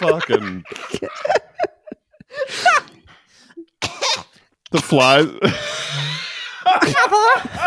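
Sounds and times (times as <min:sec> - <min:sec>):
speech: 0:00.0 - 0:01.4, 0:04.7 - 0:05.7
laughter: 0:00.0 - 0:03.0, 0:05.4 - 0:07.6
children coughing from overpowering smoke of several candles: 0:03.8 - 0:04.3.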